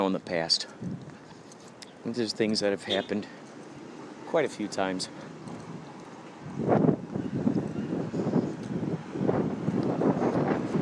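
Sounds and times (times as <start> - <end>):
speech: 0.0 - 1.0, 2.0 - 3.4, 4.3 - 5.3
heavy outdoor wind buffeting a microphone without windscreen: 0.7 - 1.3, 4.6 - 10.8.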